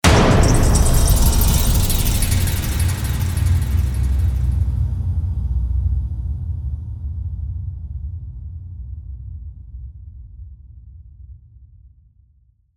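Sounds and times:
big drum: 0.0s - 6.8s
cymbal: 0.1s - 4.7s.

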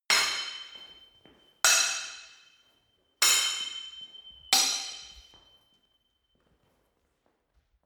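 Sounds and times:
sword hitting sword: 0.1s - 1.0s, 1.7s - 2.6s, 3.2s - 5.4s.

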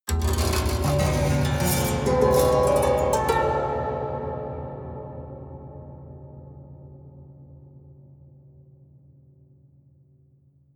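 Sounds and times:
haunted strings playing slow hard upstrokes: 0.1s - 6.0s.

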